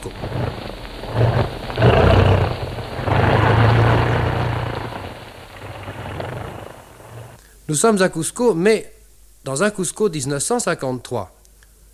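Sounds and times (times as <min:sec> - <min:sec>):
airplane engine roaring as it lands: 0:00.0 - 0:07.4
speech: 0:07.7 - 0:11.4.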